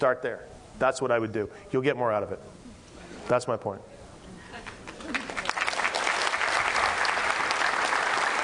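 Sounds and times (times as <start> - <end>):
speech: 0.0 - 2.6, 3.3 - 3.9
live audience applause: 4.8 - 8.4.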